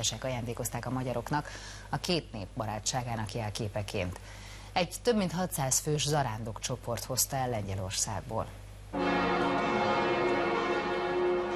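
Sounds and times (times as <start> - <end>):
speech: 0.0 - 9.6
church bells of a basilica ringing as a Marian icon copy arrives: 9.0 - 11.5.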